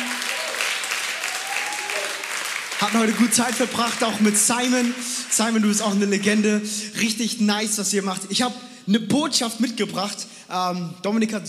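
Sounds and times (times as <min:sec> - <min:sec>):
faint voices and cheers: 0:00.0 - 0:03.2
audience applause: 0:00.0 - 0:06.4
speech: 0:02.8 - 0:11.4.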